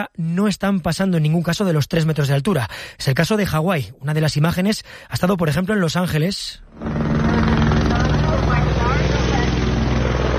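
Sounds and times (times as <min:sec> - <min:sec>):
speech: 0:00.0 - 0:07.0
helicopter rotor drone over the coast in Los Angeles: 0:06.7 - 0:10.3.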